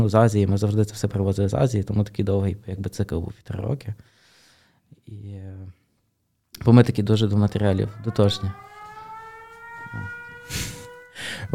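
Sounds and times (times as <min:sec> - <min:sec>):
speech: 0:00.0 - 0:04.2, 0:05.1 - 0:05.8, 0:06.6 - 0:08.7, 0:09.9 - 0:10.7, 0:11.3 - 0:11.5
air raid all-clear siren wailing: 0:07.2 - 0:11.5.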